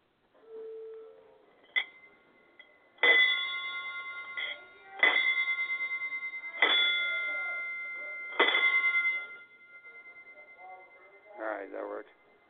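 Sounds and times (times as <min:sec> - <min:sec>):
faulty bell rung rapidly: 0:01.8 - 0:12.4
brief voice sounds: 0:03.1 - 0:12.4.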